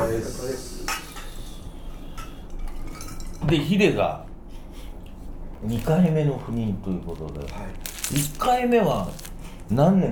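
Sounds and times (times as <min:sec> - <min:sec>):
dishes and cutlery clattering in a busy yakiniku restaurant in Hanoi: 0:02.2 - 0:03.6
speech: 0:03.5 - 0:04.3, 0:05.6 - 0:10.1.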